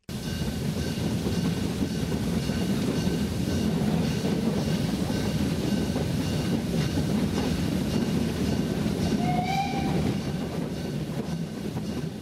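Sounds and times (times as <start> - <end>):
narrow-gauge steam train in Mecklenburg-Vorpommern rumbling and chuffing: 0.1 - 12.1
narrow-gauge steam train high whistle: 9.2 - 10.4.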